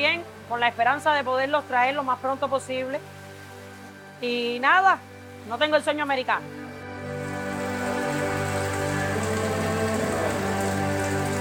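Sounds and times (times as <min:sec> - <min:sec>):
speech: 0:00.0 - 0:03.2, 0:04.2 - 0:07.2
steady rain striking a surface: 0:00.0 - 0:11.3.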